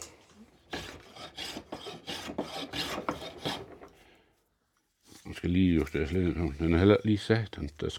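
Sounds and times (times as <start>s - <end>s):
sharp hand plane shaving wood in a planing bench: 0.7s - 3.9s
speech: 5.4s - 7.9s.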